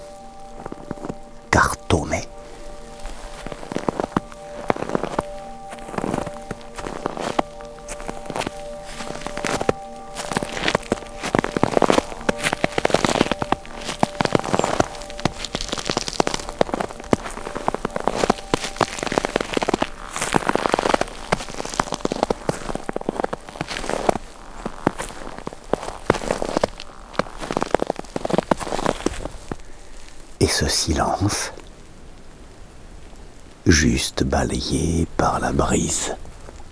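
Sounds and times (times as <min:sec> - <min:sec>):
slow footsteps crunching through powdery snow: 0:00.0 - 0:30.4, 0:35.3 - 0:36.7
speech: 0:30.6 - 0:31.6, 0:33.7 - 0:36.2.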